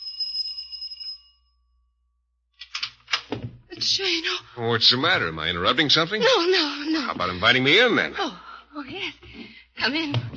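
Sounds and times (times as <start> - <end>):
doorbell chime: 0.0 - 1.9
speech: 3.8 - 10.3.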